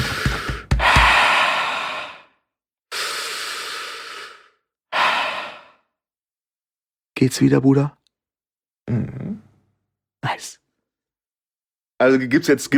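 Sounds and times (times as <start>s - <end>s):
deep breathing: 0.0s - 5.9s
speech: 7.2s - 8.0s, 8.9s - 9.4s, 10.2s - 10.6s, 12.0s - 12.7s.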